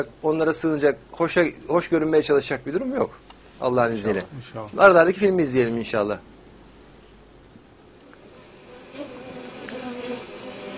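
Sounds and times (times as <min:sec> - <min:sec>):
speech: 0:00.0 - 0:06.3
honey bees buzzing inside a hive: 0:08.0 - 0:10.7.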